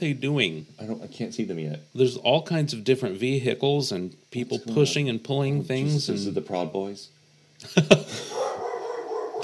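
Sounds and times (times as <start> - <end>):
speech: 0.0 - 8.6
noise: 0.0 - 9.4
dog barking at passersby: 8.3 - 9.4.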